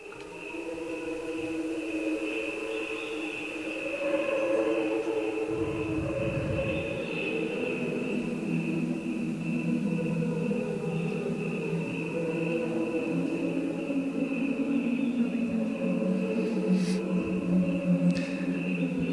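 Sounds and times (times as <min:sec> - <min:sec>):
cricket chirping slowed down into a choir-like hum: 0:00.0 - 0:19.1
steady high drone: 0:05.4 - 0:08.1.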